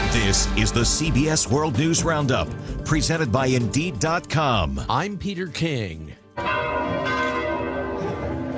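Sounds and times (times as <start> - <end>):
speech: 0.1 - 6.6
church bells ringing for Christmas at the Vatican: 6.3 - 8.5.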